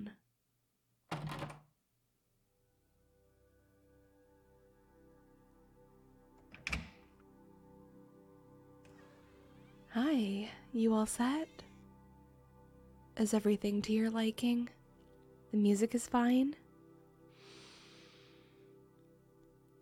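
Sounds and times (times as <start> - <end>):
door shutting: 1.1 - 1.7, 6.4 - 7.2, 8.8 - 10.0
soft sustained tones: 2.5 - 19.8
speech: 10.0 - 11.6, 13.2 - 14.8, 15.5 - 16.6.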